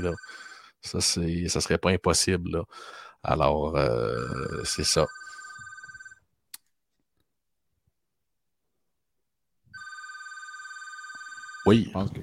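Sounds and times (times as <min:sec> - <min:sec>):
telephone ringing in electronic bursts: 0:00.0 - 0:00.7, 0:04.2 - 0:06.2, 0:09.7 - 0:11.8
speech: 0:00.0 - 0:05.2, 0:11.7 - 0:12.2.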